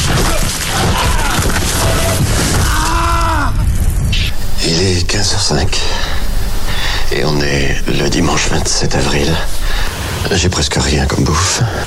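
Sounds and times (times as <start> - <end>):
large 500 kg boulder collapsing and crashing against a rock wall: 0.0 - 4.8
low groaning tones: 1.7 - 11.5
speech: 5.2 - 6.2, 7.1 - 11.8.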